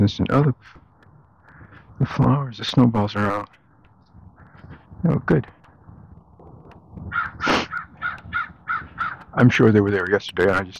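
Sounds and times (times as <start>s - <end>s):
speech: 0.0s - 0.8s, 2.0s - 3.6s, 5.0s - 5.6s, 9.4s - 10.7s
crow cawing: 4.3s - 4.9s, 6.4s - 9.4s.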